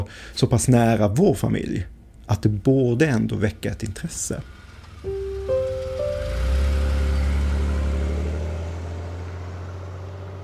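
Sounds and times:
speech: 0:00.0 - 0:05.2
car engine starting and revving: 0:04.2 - 0:10.4.

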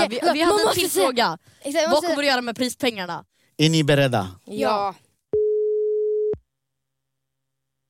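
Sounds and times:
speech: 0:00.0 - 0:05.0
telephone tone beep while a call is placed: 0:05.4 - 0:06.4.

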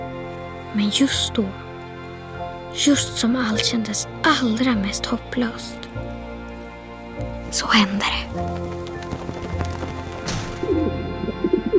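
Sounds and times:
speech: 0:00.7 - 0:01.6, 0:02.8 - 0:06.2, 0:07.5 - 0:08.8
white dove wings fluttering: 0:07.4 - 0:11.3
white dove cooing outside a window: 0:10.6 - 0:11.7.

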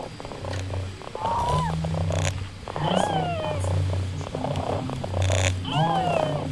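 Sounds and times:
robotic toy cat purring while petted: 0:00.0 - 0:06.4
robotic toy cat synthetic meow-like chirps: 0:01.2 - 0:01.8, 0:02.8 - 0:03.6, 0:05.7 - 0:06.4.

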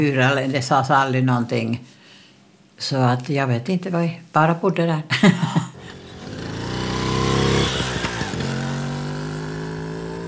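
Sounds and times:
speech: 0:00.0 - 0:02.0, 0:02.8 - 0:05.7
small moped engine running and revving: 0:05.8 - 0:10.2.

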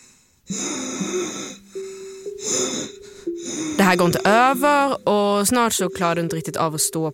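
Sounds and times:
labored wheezing breathing with whistling tone: 0:00.0 - 0:04.8
speech: 0:03.9 - 0:07.1.

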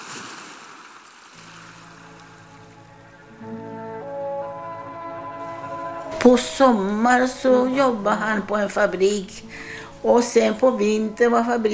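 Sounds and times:
ocean waves lapping: 0:00.0 - 0:03.6, 0:04.3 - 0:07.9
low humming drone: 0:01.4 - 0:11.7
speech: 0:06.2 - 0:11.7.

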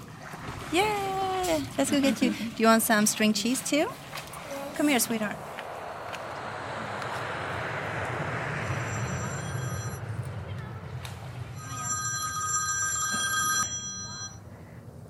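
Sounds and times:
speech: 0:00.7 - 0:04.1, 0:04.8 - 0:05.5
engine noise at an airport: 0:03.5 - 0:13.2
telephone ringback tone during outgoing call at an airport: 0:08.8 - 0:10.0, 0:11.6 - 0:14.5.

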